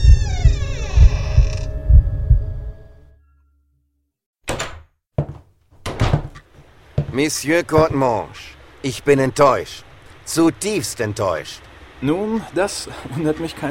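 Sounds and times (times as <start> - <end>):
old door with an iron handle creaking open: 0.0 - 2.0, 4.5 - 6.5
deep rhythmic thuds: 0.0 - 2.8, 5.2 - 8.4
sharp thumps and knocks: 4.5 - 7.2, 7.8 - 8.1
speech: 7.2 - 13.7.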